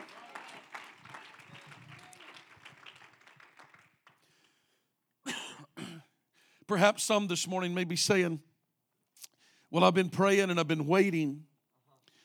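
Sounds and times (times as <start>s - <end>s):
crowd clapping: 0.0s - 4.4s
sharp cough: 5.2s - 6.1s
speech: 6.7s - 8.5s, 9.7s - 11.5s.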